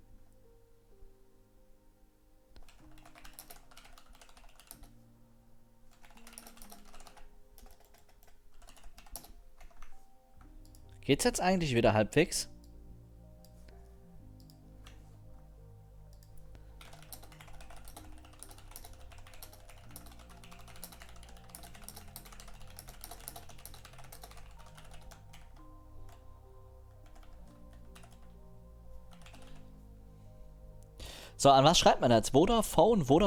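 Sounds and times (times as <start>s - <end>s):
typing on a computer keyboard: 2.6s - 5.0s, 5.9s - 11.0s, 16.1s - 26.2s, 27.0s - 28.4s, 29.0s - 29.7s
speech: 11.1s - 12.5s, 31.4s - 33.2s.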